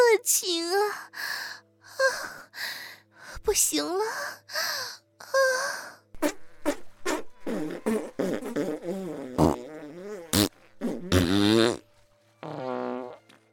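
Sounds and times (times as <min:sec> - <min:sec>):
speech: 0:00.1 - 0:01.3, 0:03.5 - 0:04.4
farting: 0:06.2 - 0:13.4.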